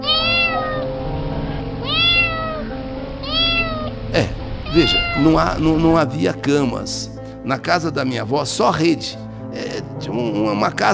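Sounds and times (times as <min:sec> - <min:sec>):
cat meowing: 0:00.0 - 0:00.9, 0:01.8 - 0:04.0, 0:04.6 - 0:05.6
speech: 0:04.2 - 0:10.9.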